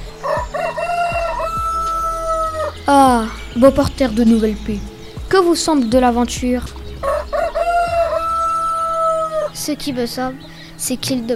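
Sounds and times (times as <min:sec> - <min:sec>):
rooster crowing: 0:00.2 - 0:02.8, 0:07.0 - 0:09.6
low thumps: 0:01.1 - 0:08.9
speech: 0:02.9 - 0:06.8, 0:09.6 - 0:11.3.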